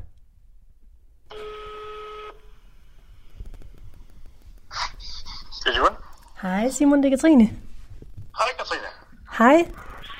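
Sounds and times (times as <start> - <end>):
telephone ringback tone on a phone line while placing a call: 1.3 - 2.4
speech: 5.8 - 7.6, 9.4 - 9.8.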